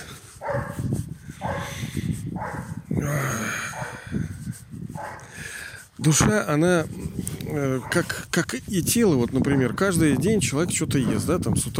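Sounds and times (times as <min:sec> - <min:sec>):
dog barking: 0:00.4 - 0:00.8, 0:01.4 - 0:01.8, 0:02.4 - 0:02.8, 0:03.7 - 0:04.0, 0:05.0 - 0:05.3, 0:07.8 - 0:08.1, 0:09.5 - 0:09.8
speech: 0:06.0 - 0:11.7.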